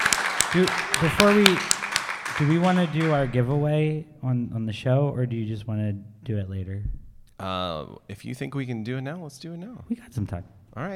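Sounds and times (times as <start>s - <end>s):
scattered clapping from a small audience: 0.0s - 3.7s
speech: 0.5s - 1.7s, 2.4s - 10.9s.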